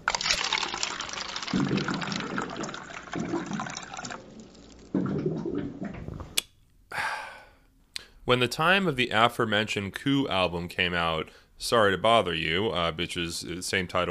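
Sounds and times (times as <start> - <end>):
water streaming from a water cooler into a cup: 0.0 - 6.0
speech: 1.5 - 2.2, 8.3 - 14.0.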